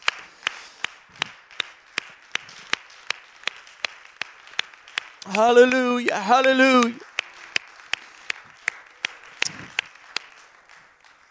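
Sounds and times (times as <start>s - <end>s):
audience clapping in a steady even rhythm: 0.0s - 11.3s
voice calling out: 5.2s - 7.0s
speech: 5.3s - 7.1s.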